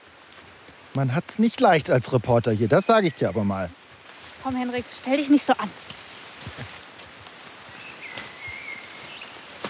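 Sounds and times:
constant leafy hiss: 0.0 - 9.6
footsteps crunching through undergrowth on overgrown forest path: 0.0 - 9.6
speech: 1.0 - 3.8, 4.4 - 6.8.

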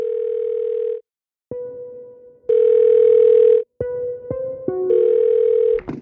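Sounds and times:
telephone ringing on the line: 0.0 - 1.0, 2.5 - 3.7, 4.9 - 5.8.

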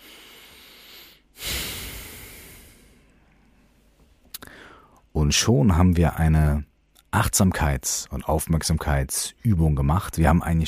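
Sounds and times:
deep breath in and out: 0.0 - 3.7, 4.4 - 5.1
speech: 5.2 - 10.6.

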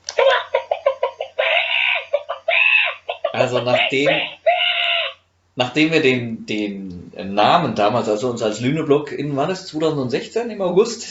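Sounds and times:
chicken clucking: 0.1 - 5.2
speech: 3.4 - 4.4, 5.6 - 11.0.

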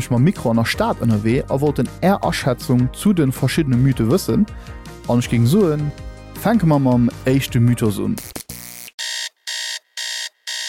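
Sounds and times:
speech: 0.0 - 8.5
alarm clock with harsh electronic beeping: 9.0 - 10.6.

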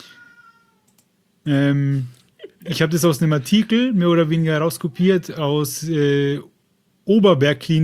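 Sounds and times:
cat meowing: 0.0 - 0.9
speech: 1.5 - 6.5, 7.1 - 7.8.

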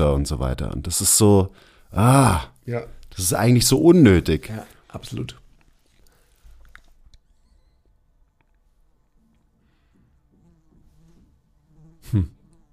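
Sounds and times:
speech: 0.1 - 5.4, 12.1 - 12.4
small fly buzzing: 10.2 - 12.7.

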